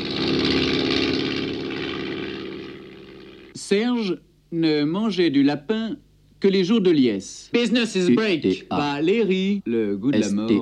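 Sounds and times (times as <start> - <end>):
light propeller touring plane engine droning: 0.0 - 3.6
speech: 3.6 - 10.6.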